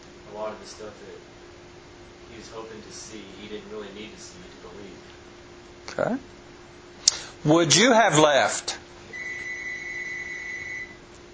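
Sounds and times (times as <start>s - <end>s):
speech: 0.5s - 1.4s, 2.3s - 8.8s
phone ringing with electronic tone: 9.1s - 11.0s.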